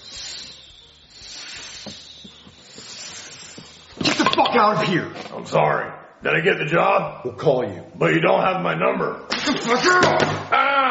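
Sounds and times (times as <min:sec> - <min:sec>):
person imitating a snake's hiss: 0:00.0 - 0:04.1
speech: 0:04.4 - 0:10.8.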